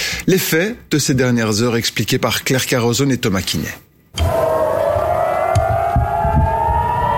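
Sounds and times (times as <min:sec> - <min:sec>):
speech: 0:00.3 - 0:04.4
air raid siren wailing over Tel Aviv Israel: 0:04.2 - 0:07.1.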